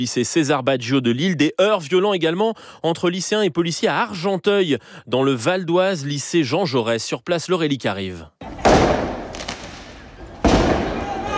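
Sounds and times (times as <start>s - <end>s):
speech: 0.0s - 9.0s
firework mortar shots during street clashes between protesters and police: 8.4s - 11.3s.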